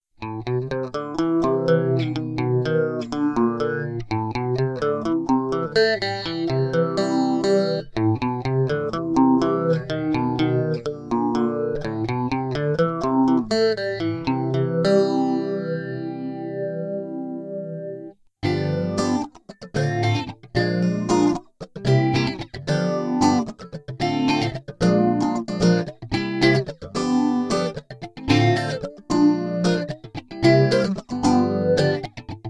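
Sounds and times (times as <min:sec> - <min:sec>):
guitar with phaser effect: 0:00.2 - 0:32.4.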